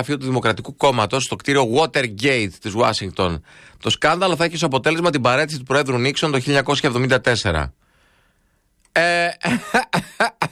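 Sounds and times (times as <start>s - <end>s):
speech: 0.0s - 7.8s, 9.0s - 10.5s
person coughing fit: 9.3s - 10.5s.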